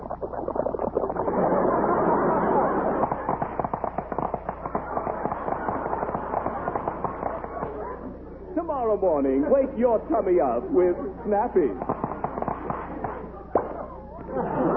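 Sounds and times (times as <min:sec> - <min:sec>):
cereal crackling and popping when milk is poured: 0:00.0 - 0:01.3, 0:03.0 - 0:07.6
laughter: 0:01.2 - 0:08.4, 0:10.7 - 0:14.7
speech: 0:08.9 - 0:12.0.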